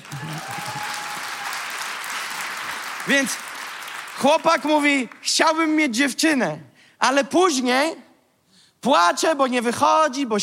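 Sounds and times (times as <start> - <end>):
large audience applause: 0.0 - 5.2
speech: 3.1 - 3.5, 4.2 - 8.0, 8.8 - 10.4.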